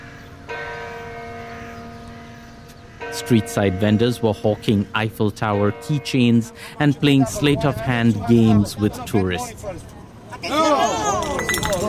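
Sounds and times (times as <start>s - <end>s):
church bell striking: 0.1s - 6.6s
speech: 3.1s - 11.1s.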